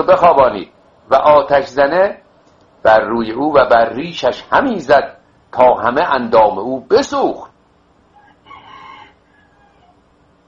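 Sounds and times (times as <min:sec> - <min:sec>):
speech: 0:00.0 - 0:02.2, 0:02.8 - 0:07.5
rooster crowing: 0:08.1 - 0:10.1.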